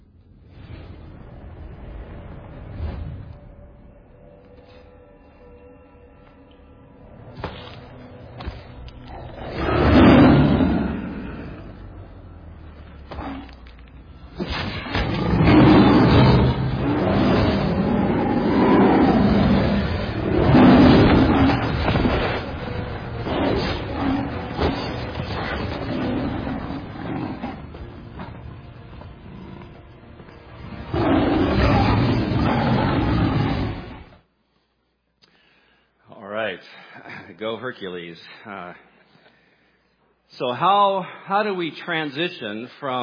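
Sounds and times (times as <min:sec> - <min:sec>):
lions growling roughly in a fight: 0:07.1 - 0:34.2
lions roaring and snarling in a fight: 0:07.4 - 0:34.2
speech: 0:37.5 - 0:38.9, 0:40.4 - 0:43.0.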